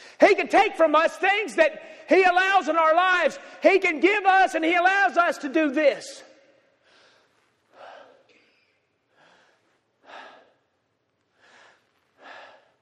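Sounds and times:
speech: 0.2 - 6.3
slow deep breaths in and out: 1.8 - 2.1, 3.4 - 3.6, 6.4 - 12.8.

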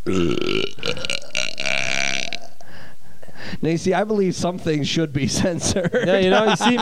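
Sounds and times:
long loud belch: 0.0 - 2.6
speech: 0.1 - 1.1, 3.6 - 6.8
laughter: 5.2 - 6.8.

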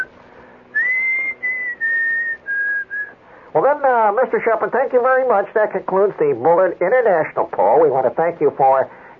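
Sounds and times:
faint hum: 0.0 - 9.1
man whistling his own tune: 0.7 - 3.2
speech: 3.6 - 9.0.

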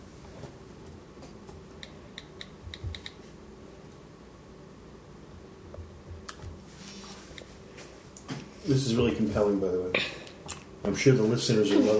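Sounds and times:
faint steady hiss: 0.0 - 11.9
typing on an iPad touchscreen: 1.8 - 3.2
speech: 8.7 - 10.2, 10.8 - 11.9.

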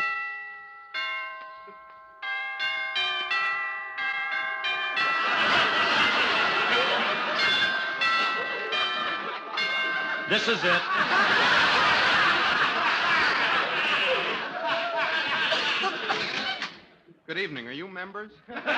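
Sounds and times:
doorbell of a fourth-floor apartment chiming: 0.0 - 12.7
laughter: 5.0 - 17.0, 18.4 - 18.7
speech: 10.3 - 12.0, 17.3 - 18.7.

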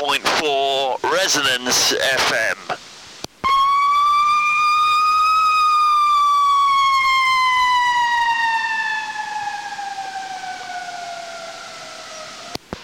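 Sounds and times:
speech: 0.1 - 2.8
fire truck siren wailing: 3.4 - 12.6.

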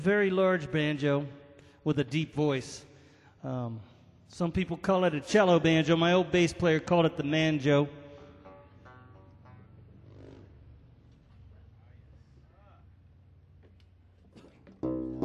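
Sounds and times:
speech: 0.0 - 8.0
motorcycles passing by: 8.8 - 14.1.

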